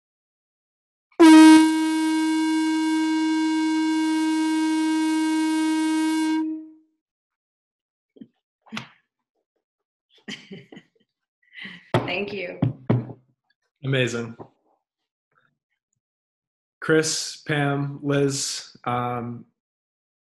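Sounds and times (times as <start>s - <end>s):
conch shell horn blown in a long brassy blast: 1.2s - 6.8s
laughter: 10.3s - 10.9s
speech: 12.1s - 12.7s, 13.8s - 14.5s, 16.8s - 19.5s.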